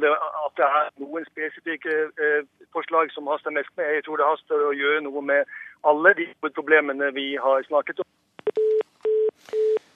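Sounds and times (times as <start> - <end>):
speech: 0.0 - 8.6
telephone busy tone after a dropped phone call: 8.4 - 9.9.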